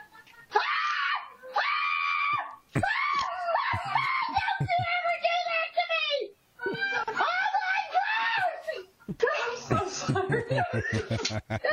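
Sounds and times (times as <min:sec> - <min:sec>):
woman screaming in fright: 0:00.5 - 0:05.0, 0:06.8 - 0:08.8
speech: 0:02.8 - 0:03.1, 0:10.2 - 0:11.7
laughter: 0:02.8 - 0:05.2, 0:08.6 - 0:11.7.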